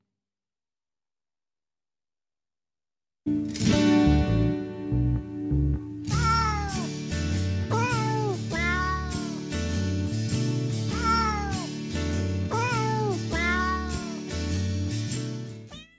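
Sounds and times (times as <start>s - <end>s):
musical backing with stepping bass notes: 3.3s - 15.6s
cat meowing: 6.1s - 6.9s, 7.7s - 9.4s, 10.9s - 11.7s, 12.5s - 14.2s, 15.7s - 15.9s.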